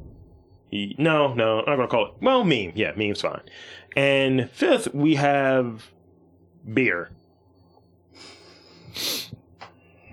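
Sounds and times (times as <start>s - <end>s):
speech: 0.7s - 6.0s, 6.6s - 7.2s, 8.2s - 9.3s
short sharp nasal sniff: 8.2s - 9.4s.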